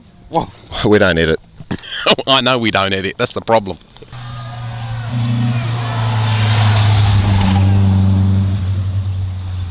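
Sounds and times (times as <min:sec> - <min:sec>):
speech: 0:00.3 - 0:03.9, 0:05.1 - 0:05.5
broad rushing noise: 0:04.1 - 0:09.6
car engine revving: 0:04.1 - 0:09.6.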